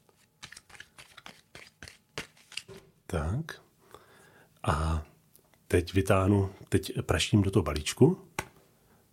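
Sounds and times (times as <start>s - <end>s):
deck of playing cards being shuffled for a card trick: 0.0s - 2.9s
speech: 3.1s - 3.7s, 4.6s - 5.1s, 5.7s - 8.3s.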